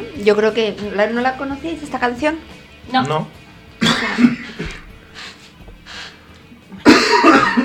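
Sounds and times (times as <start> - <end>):
speech: 0.2 - 3.4, 4.0 - 4.4
person coughing: 3.8 - 4.8, 6.8 - 7.6.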